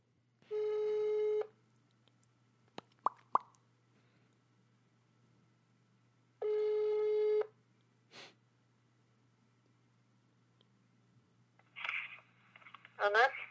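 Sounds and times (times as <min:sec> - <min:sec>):
telephone ringback tone from a call to Stockholm: 0:00.5 - 0:01.4, 0:06.4 - 0:07.5
person speaking: 0:12.9 - 0:13.4.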